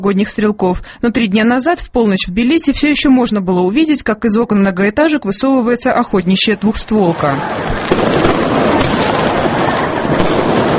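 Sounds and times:
speech: 0.0 - 8.4
New Year fireworks crackling and booming between buildings: 7.4 - 10.7.

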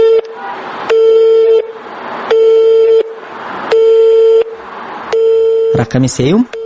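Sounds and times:
telephone line signal beep after dialling a number: 0.9 - 1.7, 2.3 - 5.9, 6.5 - 6.6
speech: 5.9 - 6.6.

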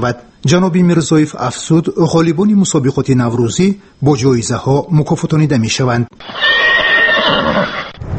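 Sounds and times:
speech: 0.0 - 6.6
horse whinnying at a horse race: 6.2 - 8.0.

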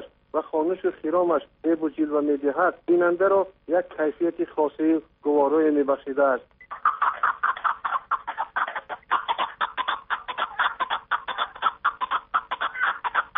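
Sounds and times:
speech: 0.4 - 6.5
partridge calling in rapid chuckling notes: 6.6 - 13.3.

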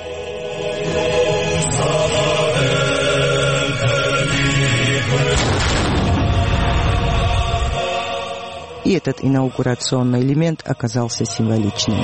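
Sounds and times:
music at an inauguration ceremony: 0.0 - 12.0
cannon shot fired at a presidential inauguration ceremony in Telavi: 5.3 - 7.3
speech: 9.0 - 12.0.

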